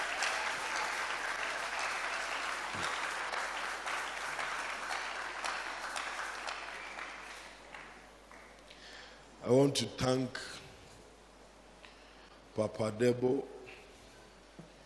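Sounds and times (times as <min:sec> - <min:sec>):
church audience clapping: 0:00.0 - 0:08.7
speech: 0:09.5 - 0:10.6, 0:12.6 - 0:13.5.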